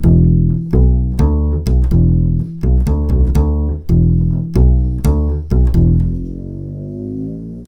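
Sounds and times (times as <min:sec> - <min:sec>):
nu jazz bass line in E major: 0:00.0 - 0:07.6.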